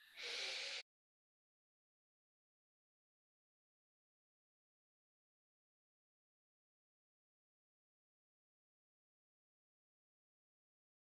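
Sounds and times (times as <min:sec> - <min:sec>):
deep breathy inhale during a guided breathing exercise: 0:00.0 - 0:00.8.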